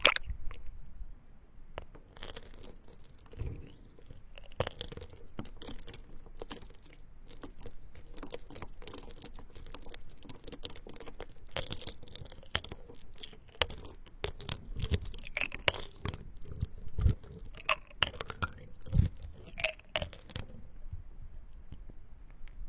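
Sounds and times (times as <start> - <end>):
ice cubes crackling and clicking in water: 0.0 - 0.7, 1.8 - 20.6.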